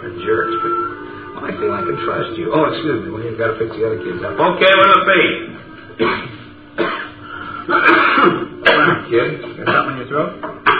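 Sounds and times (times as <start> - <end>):
speech: 1.6 - 6.3
kid coughing: 6.0 - 9.1, 9.7 - 10.0
kid clearing his throat: 6.0 - 10.0.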